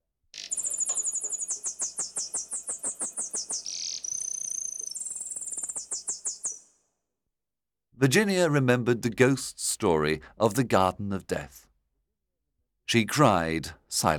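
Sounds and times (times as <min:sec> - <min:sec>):
nightingale singing: 0:00.4 - 0:06.8
speech: 0:08.0 - 0:11.6, 0:12.9 - 0:14.1.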